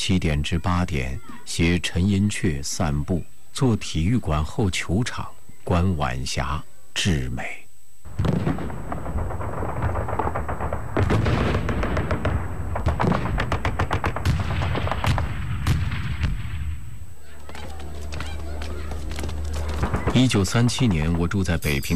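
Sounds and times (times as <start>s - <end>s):
speech: 0.0s - 7.6s, 8.2s - 8.8s, 20.2s - 21.9s
machine gun fire: 8.1s - 16.8s, 19.4s - 20.6s.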